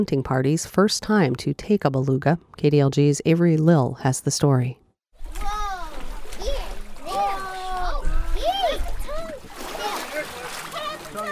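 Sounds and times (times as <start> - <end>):
speech: 0.0 - 4.8
water splashing and sloshing at a boat ramp: 5.1 - 11.3
crowd with children chattering and calling out on a boat ramp: 5.3 - 11.3.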